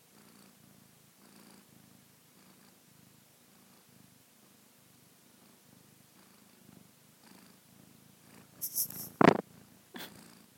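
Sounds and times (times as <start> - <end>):
sleepy kitten purring: 0.0 - 10.5
kitten sniffing and snuffling against the microphone: 8.6 - 9.2.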